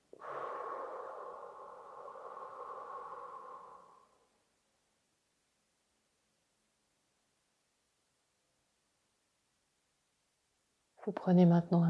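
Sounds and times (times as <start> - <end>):
person breathing during a stress-relief relaxation session: 0.0 - 4.4
speech: 11.1 - 11.8.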